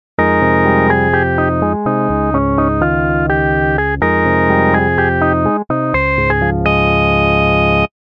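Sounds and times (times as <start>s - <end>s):
dry organ: 0.2s - 7.9s.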